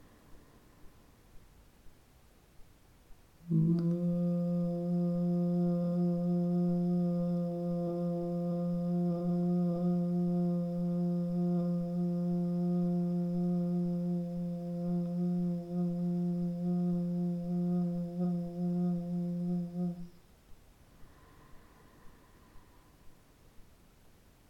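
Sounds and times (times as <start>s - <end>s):
Anahata chakra tune: 3.4s - 20.2s.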